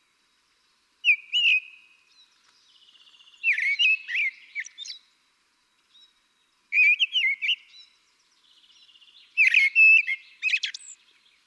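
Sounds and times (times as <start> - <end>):
common blackbird (Turdus merula) singing warbled flute-like phrases: 1.0 - 5.1, 5.9 - 11.4.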